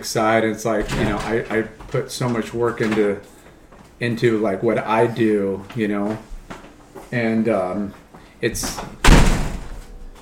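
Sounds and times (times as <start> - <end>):
speech: 0.0 - 3.4, 4.0 - 6.3, 7.1 - 9.0
doors being slammed: 0.7 - 3.2, 8.6 - 10.2.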